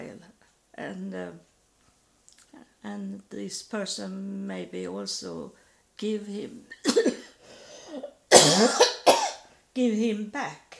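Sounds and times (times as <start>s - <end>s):
speech: 0.8s - 1.5s, 2.8s - 7.2s, 9.8s - 10.6s
person coughing harshly in a dry apartment: 6.8s - 7.3s, 8.0s - 9.4s.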